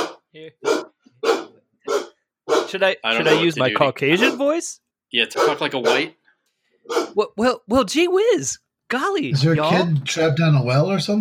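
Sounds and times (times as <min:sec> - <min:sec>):
female golden retriever barking: 0:00.0 - 0:02.8, 0:04.2 - 0:04.6, 0:05.3 - 0:06.2, 0:06.9 - 0:07.2
speech: 0:00.4 - 0:01.4, 0:02.7 - 0:06.2, 0:06.8 - 0:11.2.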